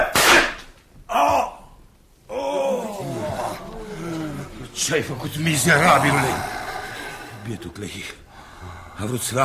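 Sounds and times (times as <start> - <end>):
gunshot: 0.1 - 0.6
long pained human groan: 2.3 - 9.1
speech: 4.9 - 6.5, 7.5 - 9.4.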